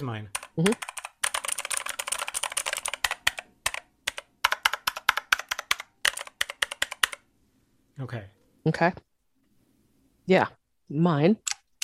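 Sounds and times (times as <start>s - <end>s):
speech: 0.0s - 0.9s, 8.0s - 9.1s, 10.3s - 11.5s
mechanical keyboard with gold switches typing: 0.3s - 7.2s, 11.4s - 11.8s.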